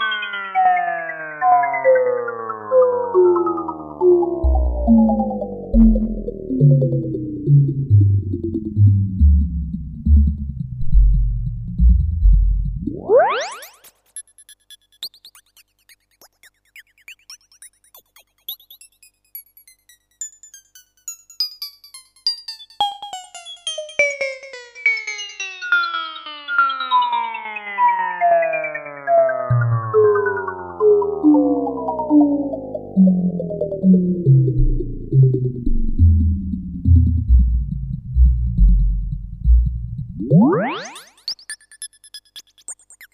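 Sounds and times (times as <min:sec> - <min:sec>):
analogue synthesizer sine sweep on a single note driven by a trapezoid generator: 0:00.1 - 0:13.9, 0:26.5 - 0:41.7.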